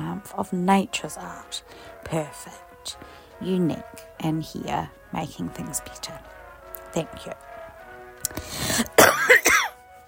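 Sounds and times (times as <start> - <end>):
speech: 0.2 - 7.4
person coughing and clearing their throat: 8.6 - 9.8.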